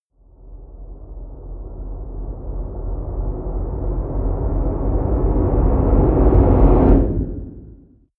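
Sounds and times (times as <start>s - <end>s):
hard deep noise rumble: 0.3s - 8.1s
risers whooshes rises: 4.9s - 8.0s.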